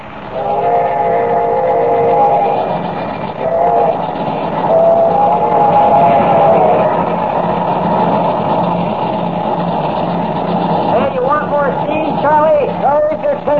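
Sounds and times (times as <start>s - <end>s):
locomotive train running on tracks: 0.0s - 13.5s
locomotive whistle-like tone: 0.3s - 7.1s.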